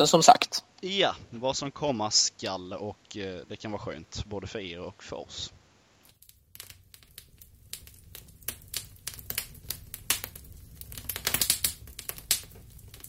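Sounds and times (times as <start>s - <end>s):
speech: 0.0s - 5.6s
fire crackling, popping and snapping: 5.9s - 13.0s.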